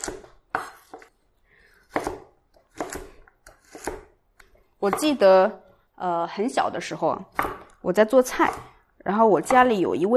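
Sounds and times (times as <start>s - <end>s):
knife chopping vegetables into small cubes on a board: 0.0s - 1.1s, 1.9s - 5.2s, 7.3s - 8.8s
speech: 4.8s - 10.1s.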